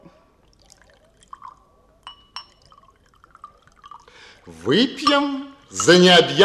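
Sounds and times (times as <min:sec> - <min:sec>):
drink pouring into glasses: 0:00.4 - 0:06.1
liquid dripping: 0:00.4 - 0:06.2
glass clinks: 0:01.3 - 0:04.1, 0:04.8 - 0:06.4
speech: 0:04.4 - 0:06.4.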